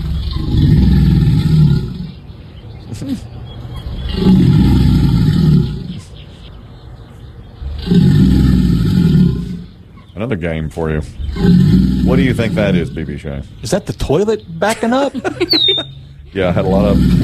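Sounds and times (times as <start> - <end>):
two alligators bellowing: 0.0 - 2.3, 2.9 - 6.2, 7.6 - 10.2, 10.8 - 13.8, 15.4 - 17.2
speech: 10.3 - 17.2
laughter: 14.6 - 17.2.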